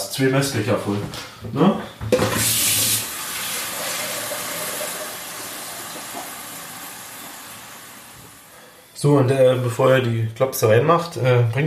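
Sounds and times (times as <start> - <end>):
speech: 0.2 - 2.7, 9.0 - 11.6
water pouring into a large wide pot: 2.4 - 8.6.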